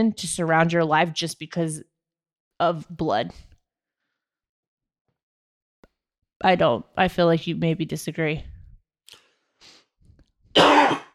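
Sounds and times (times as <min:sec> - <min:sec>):
speech: 0:00.0 - 0:01.9, 0:02.6 - 0:03.5, 0:06.4 - 0:08.5
person clearing throat with a rough cough: 0:10.6 - 0:11.1.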